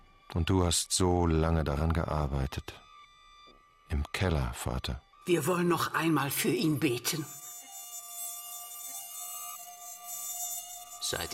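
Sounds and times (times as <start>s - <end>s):
speech: 0.3s - 2.8s, 3.9s - 7.4s, 11.0s - 11.3s
high-pitched whine of mosquitoes buzzing: 2.8s - 11.3s.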